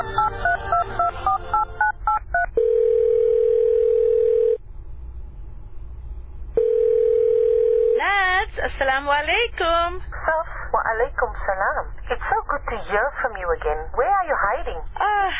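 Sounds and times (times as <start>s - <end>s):
telephone ringing tone: 0.0s - 4.6s, 6.6s - 8.0s
speech: 8.8s - 15.3s.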